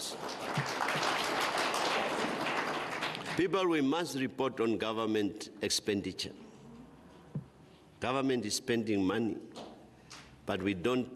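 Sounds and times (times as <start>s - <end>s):
faint applause in a parliament chamber: 0.0s - 3.4s
speech: 3.4s - 6.4s, 8.0s - 9.5s, 10.5s - 11.1s.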